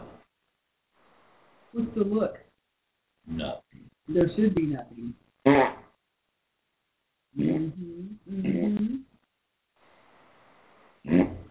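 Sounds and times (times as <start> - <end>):
speech: 1.7 - 2.4, 3.3 - 5.8, 7.4 - 9.0
wet mouth-made fart noises: 5.4 - 6.0, 7.4 - 9.1, 11.0 - 11.4.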